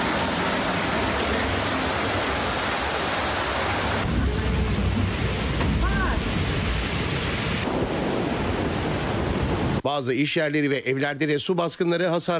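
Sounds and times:
heavy afternoon rain downpour in the capital city: 0:00.0 - 0:09.8
speech: 0:09.8 - 0:12.3.

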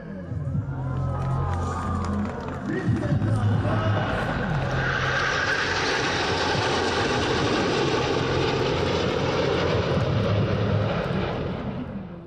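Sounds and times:
faint crowd murmur at an aviation festival: 0:00.0 - 0:04.9, 0:11.6 - 0:12.2
scattered voices: 0:00.0 - 0:05.0
fighter jet engine roaring overhead at an aviation festival in İzmir Turkey: 0:01.3 - 0:12.2.

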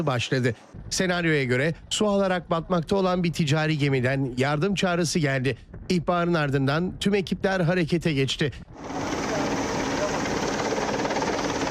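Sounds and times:
speech: 0:00.0 - 0:09.2
helicopter rotor and engine roar in a search-and-rescue exercise at sea: 0:08.7 - 0:11.6.

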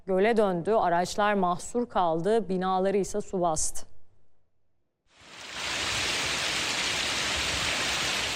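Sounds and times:
speech: 0:00.1 - 0:03.9
hail pounding down during a storm: 0:05.2 - 0:08.3
heavy rain during a storm: 0:05.2 - 0:08.3.

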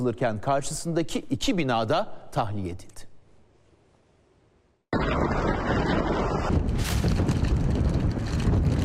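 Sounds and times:
speech: 0:00.0 - 0:03.1
strong wind roaring across the microphone: 0:04.9 - 0:08.8.

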